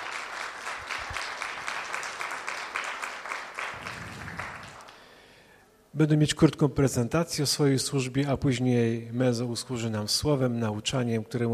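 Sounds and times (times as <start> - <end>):
audience applause welcoming guests at a church gathering: 0.0 - 5.0
speech: 6.0 - 11.5.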